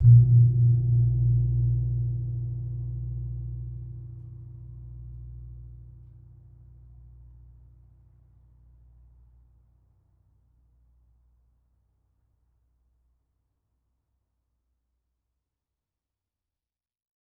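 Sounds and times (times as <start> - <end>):
suwukan gong from a gamelan: 0.0 - 6.1.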